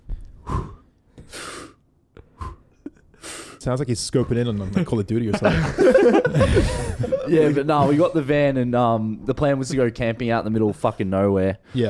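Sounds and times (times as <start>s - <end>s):
deep breaths: 0.0s - 3.6s, 6.3s - 7.2s
speech: 3.6s - 11.8s
laughter: 4.5s - 8.3s.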